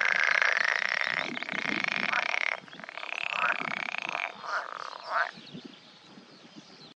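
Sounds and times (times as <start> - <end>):
edible frog chorus croaking: 0.0 - 5.4.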